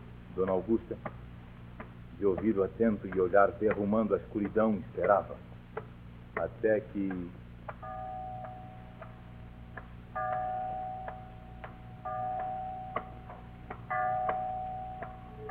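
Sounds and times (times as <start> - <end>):
low hum: 0.0 - 15.4
speech: 0.4 - 1.3, 2.2 - 7.4
clock ticking: 0.4 - 15.4
clock chimes ringing: 7.7 - 15.4.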